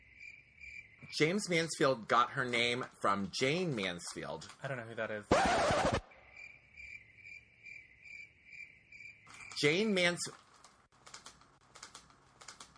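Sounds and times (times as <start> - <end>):
crickets chirping in a pulsing trill: 0.0 - 2.5, 6.0 - 10.2
speech: 1.1 - 6.0, 9.6 - 10.5
scattered faint clicks: 9.2 - 12.7.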